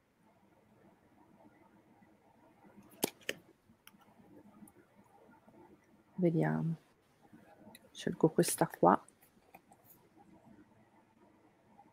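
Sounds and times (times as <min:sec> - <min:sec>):
playing cards snapping and flicking as a card is chosen from a deck: 0:02.9 - 0:03.4
speech: 0:06.2 - 0:06.8, 0:08.0 - 0:09.1.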